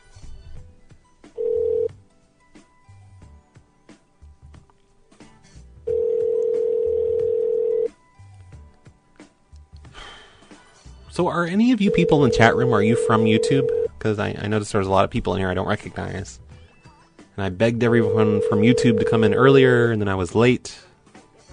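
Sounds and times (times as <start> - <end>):
telephone redial tone: 1.4 - 2.0, 5.9 - 7.9, 11.8 - 13.9, 18.0 - 19.4
speech: 11.2 - 16.5, 17.4 - 20.8
answering machine beep: 11.8 - 13.9.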